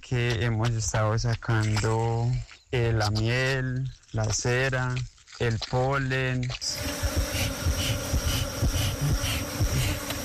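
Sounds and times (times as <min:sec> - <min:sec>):
speech: 0:00.1 - 0:07.0
many bees buzzing: 0:06.7 - 0:10.2.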